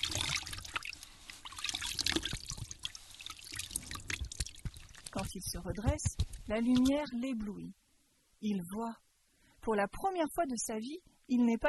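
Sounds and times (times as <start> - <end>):
water splashing as someone washes mud off their face: 0.0 - 5.6
speech: 5.3 - 7.8, 8.4 - 9.0, 9.6 - 11.6.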